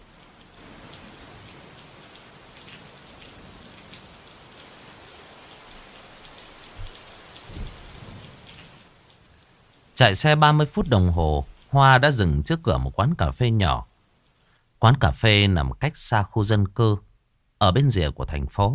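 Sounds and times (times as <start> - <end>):
heavy pouring rain in cold weather: 0.0 - 14.6
low thuds: 6.8 - 7.9
speech: 10.0 - 13.9, 14.8 - 18.7.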